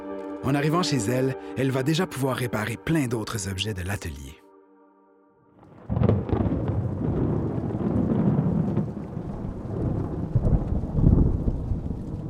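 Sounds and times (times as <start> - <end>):
speech: 0.4 - 4.4
deep rolling thunder during a rainstorm: 5.6 - 12.2.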